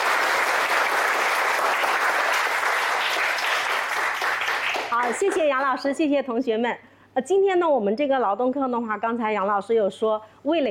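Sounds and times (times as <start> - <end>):
students applauding in a classroom: 0.0 - 5.8
speech: 5.0 - 10.7.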